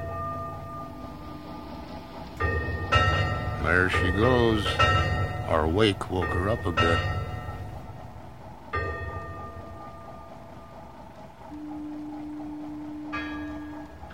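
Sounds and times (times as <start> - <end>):
gong ringing out in the fog: 0.0 - 14.1
steady low engine rumble: 0.0 - 14.1
speech: 3.7 - 7.1.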